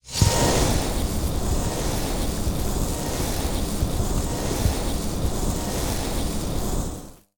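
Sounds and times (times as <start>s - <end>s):
trap electric turret monster: 0.0s - 6.8s.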